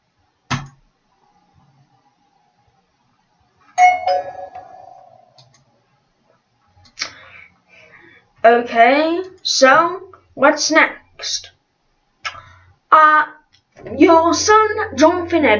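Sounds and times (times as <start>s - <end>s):
doorbell chiming: 3.8s - 5.4s
speech: 8.4s - 11.5s, 13.9s - 15.5s.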